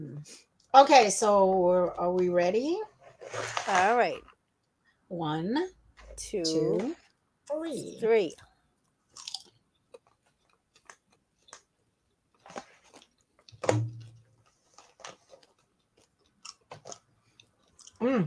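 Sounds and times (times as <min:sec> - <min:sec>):
speech: 0:00.2 - 0:04.3, 0:05.1 - 0:08.5, 0:13.6 - 0:14.0, 0:18.0 - 0:18.2
chewing blue cheese: 0:08.4 - 0:13.6, 0:14.4 - 0:18.2.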